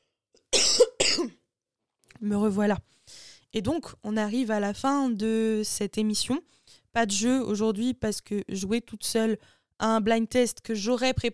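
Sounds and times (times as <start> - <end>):
harsh throaty coughs: 0.5 - 1.4
speech: 2.2 - 11.3.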